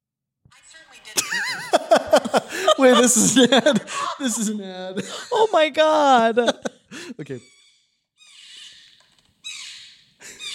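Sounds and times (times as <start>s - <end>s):
speech: 0.5s - 7.6s
laughter: 1.1s - 7.4s
porcupine making squeaky muttering calls: 7.4s - 10.5s.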